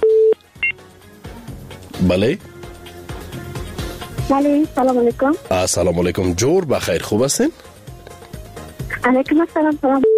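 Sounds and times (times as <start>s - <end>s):
telephone dialing tones while connecting a call: 0.0s - 0.4s, 10.0s - 10.1s
speech: 2.0s - 2.6s, 4.3s - 7.7s, 9.0s - 10.1s.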